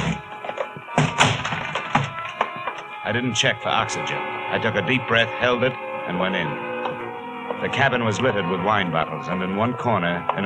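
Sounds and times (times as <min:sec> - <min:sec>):
fire axe striking a ship's cabin: 0:00.0 - 0:02.8
speech: 0:03.1 - 0:06.7, 0:07.6 - 0:10.4.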